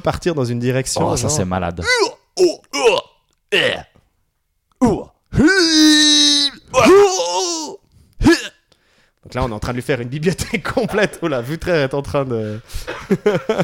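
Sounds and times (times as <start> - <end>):
speech: 0.0 - 3.7, 9.4 - 13.6
voice imitating combat grunts and groans: 1.0 - 4.0, 4.8 - 8.6
laughter: 12.9 - 13.6.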